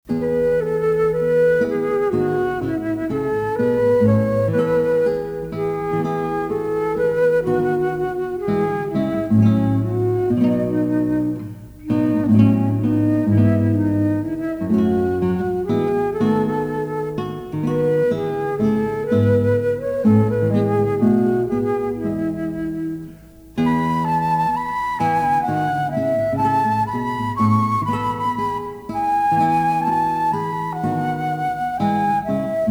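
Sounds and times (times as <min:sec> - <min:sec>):
classical guitar: 0:00.0 - 0:32.7
flute: 0:00.1 - 0:32.7.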